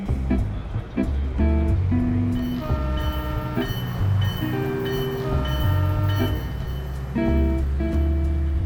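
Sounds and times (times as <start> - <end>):
train rumbling while pulling away from the station: 0.0 - 8.6
train squeals: 2.3 - 8.2
horn-like tonal notes: 2.4 - 8.5.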